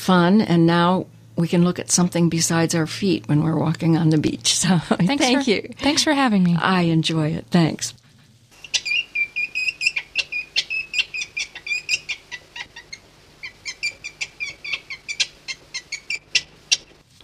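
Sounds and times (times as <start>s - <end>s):
speech: 0.0s - 8.0s
weasel squeaky chirping calls: 8.6s - 16.9s.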